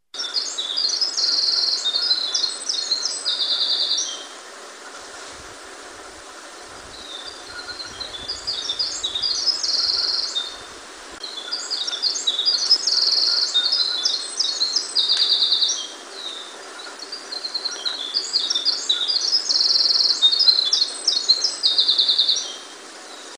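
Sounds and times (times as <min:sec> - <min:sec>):
Winter Wren singing: 0:00.2 - 0:04.4, 0:06.7 - 0:23.3.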